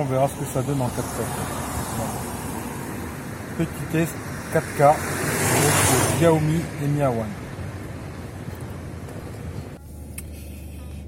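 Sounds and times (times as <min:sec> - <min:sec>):
speech: 0:00.0 - 0:02.4, 0:03.6 - 0:07.4
road and engine noise inside a moving car: 0:00.0 - 0:11.0.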